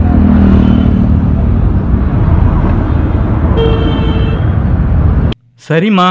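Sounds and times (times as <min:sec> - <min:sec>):
loud constant road traffic with rumbling engines: 0:00.0 - 0:05.8
car horns honking in road traffic: 0:03.5 - 0:04.8
speech: 0:05.7 - 0:06.0.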